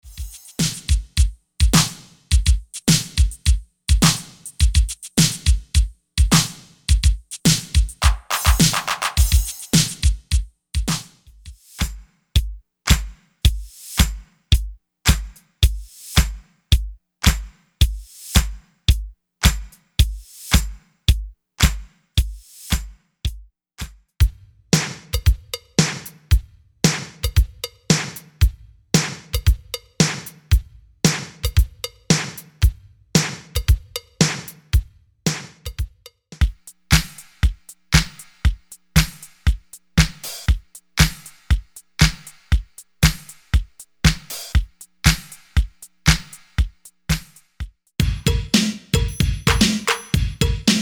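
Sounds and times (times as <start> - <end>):
1980s drum beat: 0.0 - 50.7.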